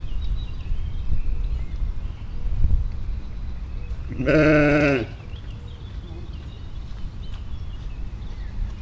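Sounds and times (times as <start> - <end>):
wind: 0.0 - 8.8
Cameroon sheep bleating at a zoo: 4.1 - 5.2.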